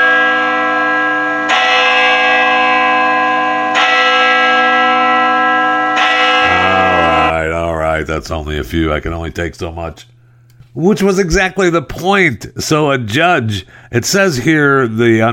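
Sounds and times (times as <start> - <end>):
church bells that also serve as a town clock ringing: 0.0 - 7.4
speech: 8.0 - 10.2, 10.8 - 15.3.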